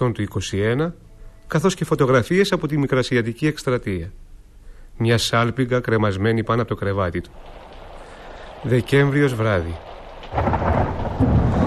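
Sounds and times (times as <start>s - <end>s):
speech: 0.0s - 4.2s, 5.0s - 7.6s, 8.6s - 10.8s
deep rumble of thunder: 6.5s - 11.6s
heavy rain pouring: 6.8s - 11.6s.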